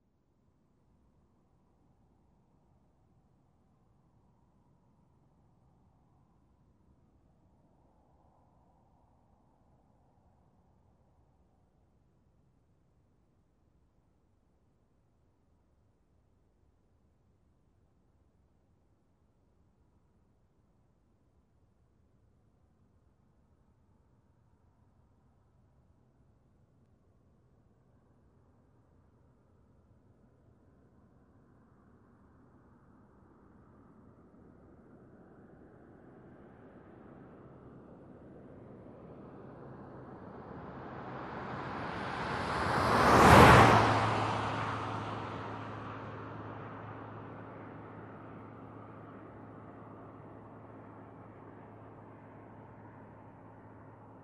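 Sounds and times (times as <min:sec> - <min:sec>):
car passing by at normal speed: 0:38.6 - 0:54.2.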